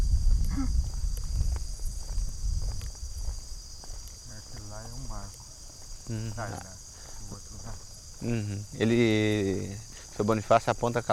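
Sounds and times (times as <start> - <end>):
crickets chirping at night: 0.0 - 11.1
footsteps crunching: 0.1 - 8.7
speech: 6.1 - 7.4, 8.2 - 11.1.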